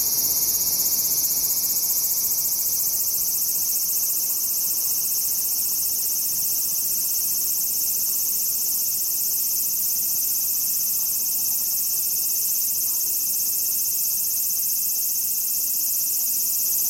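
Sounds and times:
large brown cicada singing an even hissing sizzle: 0.0s - 16.8s.

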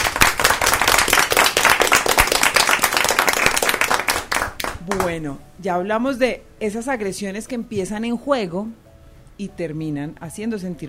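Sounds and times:
crowd applauding: 0.0s - 5.1s
speech: 4.9s - 8.8s, 9.4s - 10.8s.

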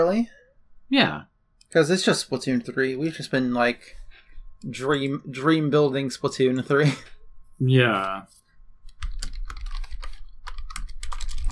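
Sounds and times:
speech: 0.1s - 4.0s, 4.6s - 8.4s
fingers typing rapidly on a computer keyboard: 8.9s - 11.5s.

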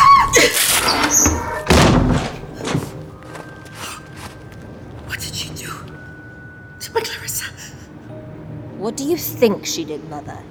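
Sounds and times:
door being forced open: 0.0s - 3.0s
rattling knocks: 0.6s - 3.0s
speech: 9.0s - 10.4s.

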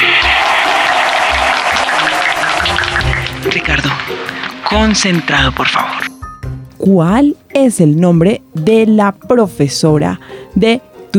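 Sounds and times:
audience applause for a contestant at a quiz contest: 0.0s - 5.5s
speech: 4.7s - 6.1s, 6.8s - 11.1s.

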